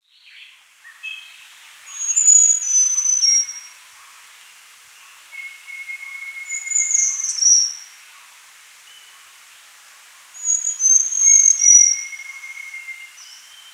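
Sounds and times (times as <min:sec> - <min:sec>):
small niltava singing high thin whistled phrases: 0:02.0 - 0:03.7, 0:05.4 - 0:07.8, 0:10.4 - 0:13.7.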